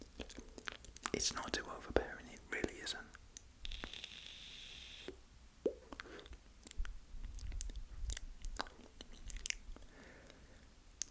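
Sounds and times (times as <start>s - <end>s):
soft wet mouth clicks and pops: 0.0s - 1.3s, 5.1s - 10.4s
speech: 1.2s - 3.2s
whirring hiss of a draw on a disposable vape: 3.6s - 5.2s.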